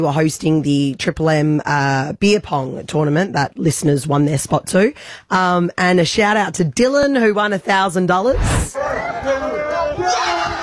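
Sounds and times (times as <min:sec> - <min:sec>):
speech: 0:00.0 - 0:09.3
loud crowd roaring and cheering wildly: 0:08.7 - 0:10.6.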